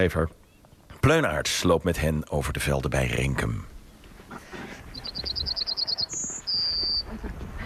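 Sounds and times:
speech: 0.0s - 0.4s, 1.0s - 3.7s
faint outdoor noise: 0.0s - 7.6s
bird singing in a row of trees beside open fields: 0.3s - 0.9s, 4.9s - 7.2s.

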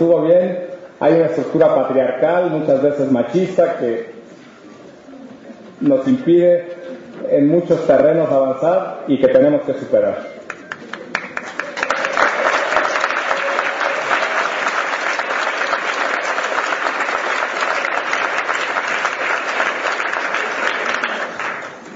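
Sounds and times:
speech: 0.0s - 4.1s, 5.8s - 10.3s
audience applause at a seminar: 10.5s - 21.9s.

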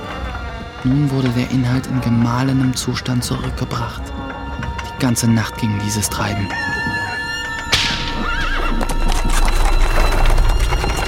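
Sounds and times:
hooves of horse drawing a heavily loaded wagon clattering: 0.0s - 11.0s
wooden wheels of a heavily loaded horse-drawn wagon rolling through wet meadows: 0.0s - 11.0s
speech: 0.8s - 4.4s, 5.0s - 6.8s
horse whinnying: 6.5s - 9.8s
sharp crack: 7.7s - 8.7s.

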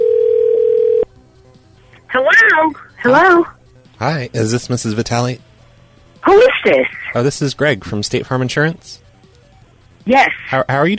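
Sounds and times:
telephone ringing tone of an outgoing call: 0.0s - 1.1s
speech: 2.2s - 5.5s, 6.2s - 9.0s, 10.1s - 10.9s.

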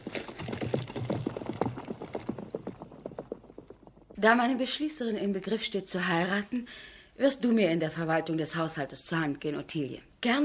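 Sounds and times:
horses' hooves clip-clopping as riders set off: 0.0s - 4.2s
speech: 4.2s - 10.4s.

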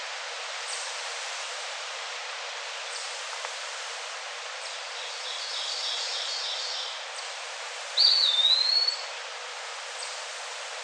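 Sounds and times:
steady hiss: 0.0s - 10.8s
Eastern wood pewee Contopus virens song: 8.0s - 9.0s.

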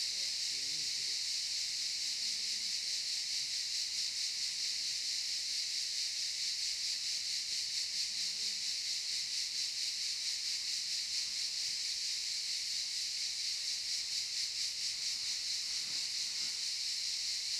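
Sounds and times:
cicada chorus in the pine forest of a campsite in Tuscany, Italy: 0.0s - 17.5s.

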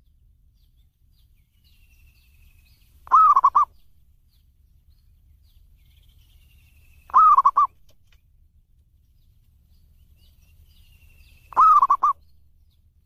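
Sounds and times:
faint background hum: 0.0s - 13.0s
zebra dove song: 3.0s - 3.8s, 7.1s - 7.9s, 11.5s - 12.2s.

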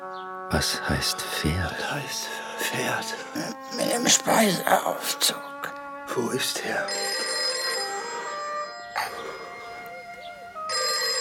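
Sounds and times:
speech: 0.5s - 5.5s, 6.1s - 7.2s
telephone bell ringing: 6.8s - 9.8s, 10.7s - 11.1s.

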